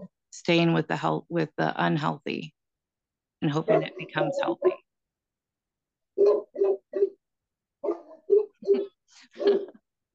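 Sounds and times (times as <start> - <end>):
speech: 0.4 - 2.6, 3.4 - 4.8
two big dogs barking: 3.6 - 4.8, 6.2 - 7.2, 7.8 - 9.7.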